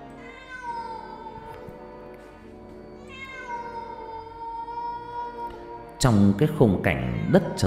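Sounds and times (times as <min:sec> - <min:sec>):
cats yowling eerily from bushes: 0:00.0 - 0:01.8, 0:03.0 - 0:06.0
speech: 0:06.0 - 0:07.6.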